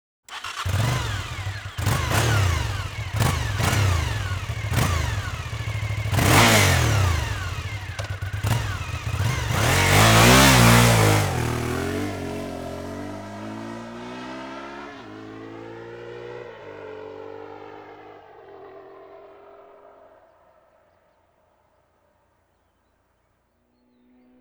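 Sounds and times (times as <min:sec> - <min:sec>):
Suzuki TL 1000 S motorcycle: 0:00.3 - 0:23.0, 0:23.6 - 0:24.4.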